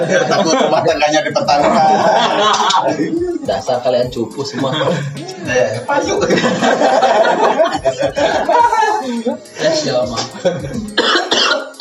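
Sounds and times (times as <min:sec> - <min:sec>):
speech: 0:00.0 - 0:10.8
laughter: 0:00.0 - 0:11.5
person coughing harshly: 0:10.8 - 0:11.8.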